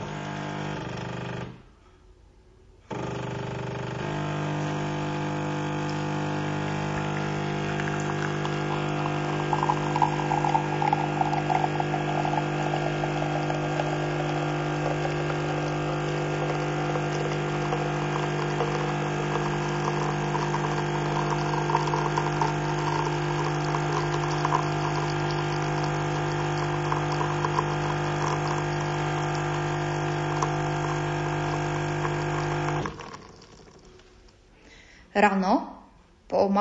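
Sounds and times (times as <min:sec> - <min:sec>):
coffee machine pump buzzing hum while making coffee: 0:00.0 - 0:01.4, 0:02.9 - 0:34.3
coffee gurgling in coffee machine: 0:05.8 - 0:34.3
speech: 0:35.2 - 0:35.6.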